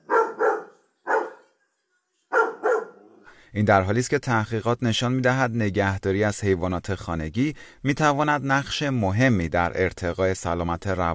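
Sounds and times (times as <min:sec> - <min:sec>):
dog barking: 0:00.0 - 0:01.6, 0:02.3 - 0:03.2
speech: 0:03.6 - 0:11.1.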